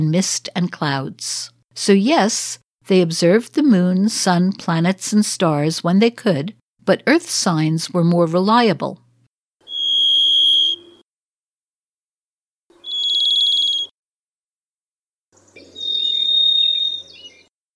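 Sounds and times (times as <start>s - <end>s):
speech: 0.0s - 9.0s
varied thrush singing long ethereal whistled notes: 9.6s - 11.0s, 12.7s - 13.9s, 15.5s - 17.5s.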